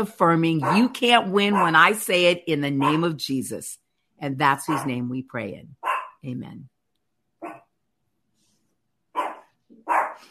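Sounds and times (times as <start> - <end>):
speech: 0.0 - 6.7
dog barking: 0.6 - 1.9, 2.8 - 3.1, 4.6 - 5.0, 5.8 - 6.2, 7.4 - 7.7, 9.1 - 10.2.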